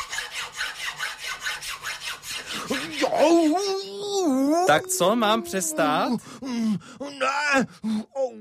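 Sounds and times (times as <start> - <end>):
thin sharp metal file filing a piece of tongue on an anvil: 0.0 - 3.6
speech: 4.7 - 8.3.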